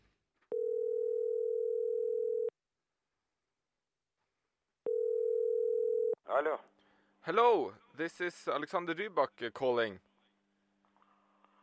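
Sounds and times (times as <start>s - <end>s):
telephone ringback tone on an outgoing call: 0.5s - 2.5s, 4.9s - 6.2s
speech: 6.3s - 10.1s.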